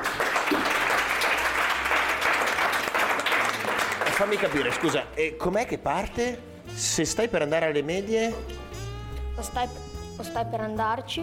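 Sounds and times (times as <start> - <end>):
crowd applauding: 0.0 - 5.1
speech: 4.2 - 8.6, 9.4 - 11.2.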